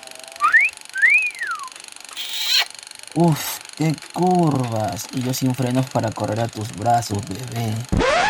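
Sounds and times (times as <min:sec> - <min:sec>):
wolf whistle catcall aimed at a passing woman: 0:00.4 - 0:02.7
speech: 0:03.2 - 0:08.1.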